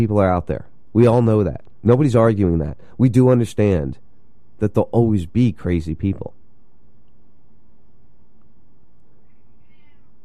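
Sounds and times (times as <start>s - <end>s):
speech: 0.0s - 4.0s, 4.6s - 6.4s
low hum of room noise: 0.0s - 10.2s
male pet cat meowing: 9.6s - 10.2s.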